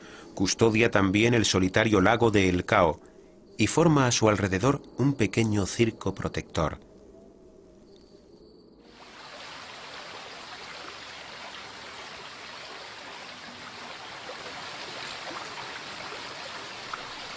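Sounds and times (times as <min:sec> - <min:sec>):
speech: 0:00.4 - 0:06.9
mountain river rushing: 0:08.9 - 0:17.3.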